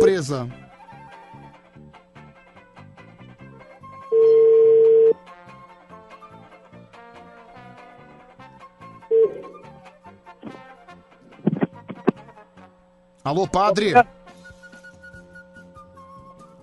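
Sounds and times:
speech: 0.1 - 0.6, 13.2 - 14.2
telephone ringback tone while a call is being placed: 4.1 - 5.2, 9.1 - 9.7.

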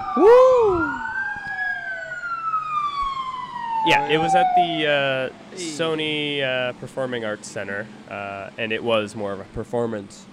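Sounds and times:
emergency vehicle siren wailing in a city: 0.0 - 6.1
low rumble of city traffic: 0.0 - 10.3
speech: 0.2 - 0.5, 3.9 - 10.3.

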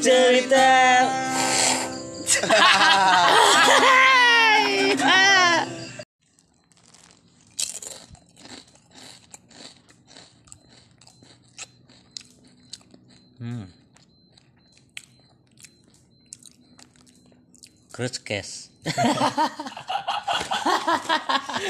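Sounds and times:
speech: 0.0 - 1.3, 2.3 - 3.4, 18.0 - 21.6
laughter: 2.2 - 5.8, 18.8 - 21.6
loud high wailing voice: 2.8 - 5.8
crisp crunching bites and chewing on a crunchy snack: 6.2 - 18.0.

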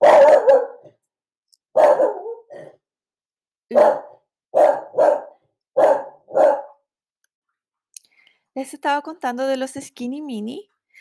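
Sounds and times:
dogs barking: 0.0 - 1.0, 1.7 - 2.8, 3.7 - 6.9
speech: 8.6 - 10.9.

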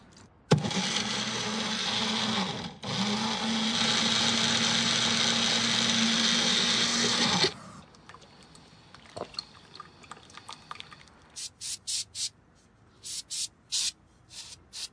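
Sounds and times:
electric blender running: 0.6 - 7.6.

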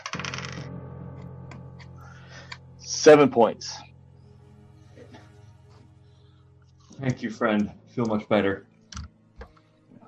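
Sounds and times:
dice clattering onto a surface in a game: 0.0 - 0.7
steady tonal hum: 0.6 - 10.0
speech: 2.9 - 3.9, 7.0 - 8.7.

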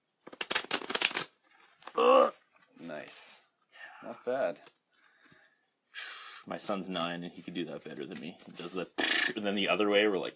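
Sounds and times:
deck of playing cards being riffle-shuffled: 0.2 - 2.0
speech: 4.0 - 4.8, 6.5 - 10.3.

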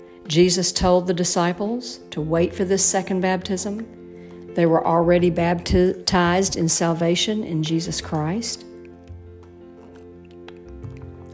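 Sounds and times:
speech: 0.2 - 4.0, 4.6 - 8.7
quiet wet mouth sounds: 8.8 - 11.3
person slurping a sip of hot coffee: 9.4 - 11.3.

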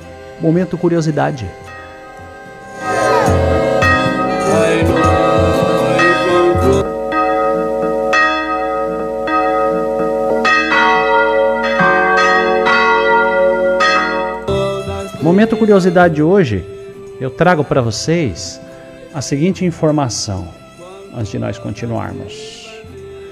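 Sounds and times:
speech: 0.4 - 1.6, 15.3 - 22.6
bell rung to call for attention: 1.6 - 16.0.

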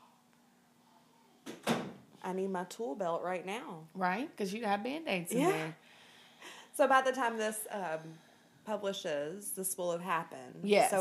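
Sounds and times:
quiet hum: 0.0 - 11.0
door thumping shut: 1.5 - 2.0
speech: 2.2 - 11.0.

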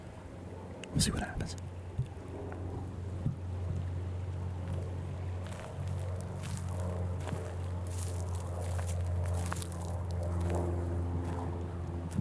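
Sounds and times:
low engine drone from an aircraft overhead: 0.0 - 12.1
speech: 0.9 - 1.8
footsteps walking through dry leaves in woods: 5.4 - 11.5.

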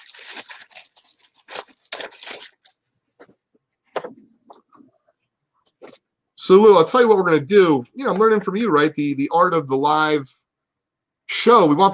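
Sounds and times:
plastic card saver sleeve crinkling while handled: 0.0 - 3.4
speech: 6.5 - 10.4, 11.4 - 11.9.

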